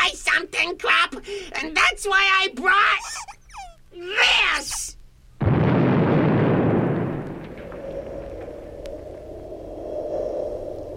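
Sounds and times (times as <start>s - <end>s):
speech: 0.7s - 3.3s
nuclear explosion blast: 5.4s - 9.7s
long deep rumbling drone: 5.4s - 10.9s.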